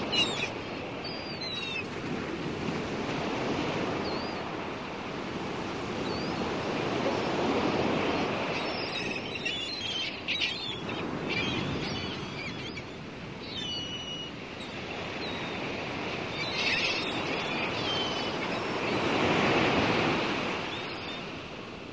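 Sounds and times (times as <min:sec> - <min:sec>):
faint bird calls: 0:00.0 - 0:01.8, 0:08.1 - 0:19.6
sea surf: 0:00.0 - 0:21.9.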